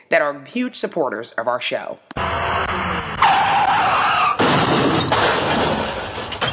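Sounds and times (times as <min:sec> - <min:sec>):
speech: 0:00.1 - 0:02.6
car tires screeching before a crash: 0:02.2 - 0:06.3
roaring noise: 0:02.2 - 0:06.5
heavy car crash impact: 0:03.2 - 0:06.5
rattling debris: 0:04.4 - 0:06.5.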